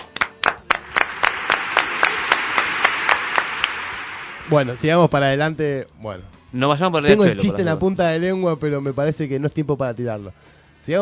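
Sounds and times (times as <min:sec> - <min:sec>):
hands clapping in a steady rhythm: 0:00.0 - 0:04.9
speech: 0:04.5 - 0:11.0.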